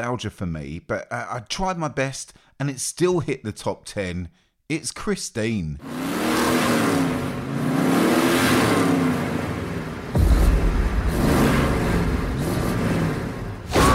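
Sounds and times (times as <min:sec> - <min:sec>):
speech: 0:00.0 - 0:07.1
car engine revving: 0:05.8 - 0:13.8.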